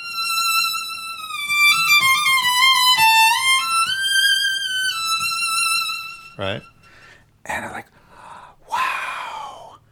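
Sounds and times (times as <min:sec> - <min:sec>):
violin playing a high sustained melody: 0:00.0 - 0:06.9
speech: 0:06.4 - 0:06.7, 0:07.5 - 0:07.9.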